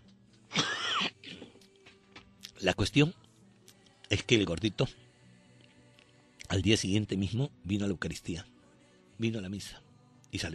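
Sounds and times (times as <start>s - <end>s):
throat clearing with small cough: 0.5s - 1.5s
speech: 2.6s - 3.2s, 4.2s - 5.0s, 6.5s - 8.5s, 9.2s - 10.5s.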